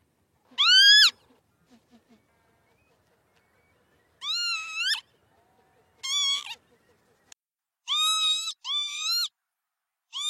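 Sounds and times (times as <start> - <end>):
Northern lapwing calls: 0.5 - 7.0, 7.9 - 9.3.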